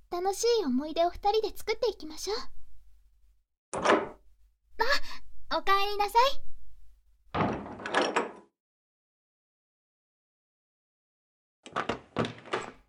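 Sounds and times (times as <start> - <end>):
speech: 0.1 - 2.6, 3.7 - 4.0, 4.8 - 6.5, 11.7 - 12.0
door being shut abruptly: 3.8 - 4.2, 7.4 - 8.5, 11.7 - 12.8.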